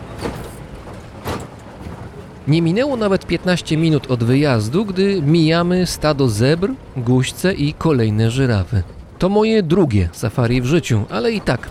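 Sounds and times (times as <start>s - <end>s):
engine rumble inside a well-worn car on an unpaved road in a safari park: 0.0s - 11.6s
speech: 2.4s - 11.6s.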